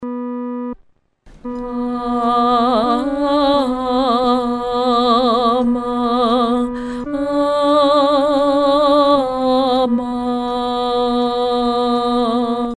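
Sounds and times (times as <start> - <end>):
solo voice singing an amen: 1.5 - 12.7.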